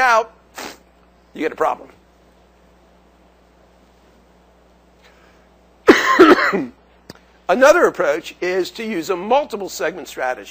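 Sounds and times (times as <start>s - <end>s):
speech: 0.2s - 0.4s, 1.3s - 2.0s, 6.1s - 6.8s, 7.5s - 10.4s
person coughing: 5.8s - 6.8s.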